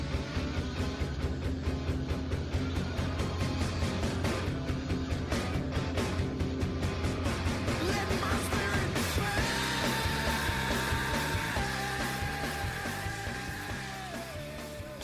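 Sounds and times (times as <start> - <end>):
loud dense rock track with full band: 0.0 - 15.0
singer's sustained strained sung wail: 7.8 - 15.0.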